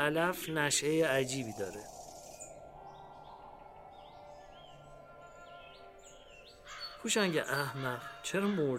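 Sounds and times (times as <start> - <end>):
speech: 0.0 - 2.0, 7.0 - 8.7
steady outdoor hum: 0.0 - 7.0
many small birds chirping and twittering in a spring valley: 0.0 - 8.7.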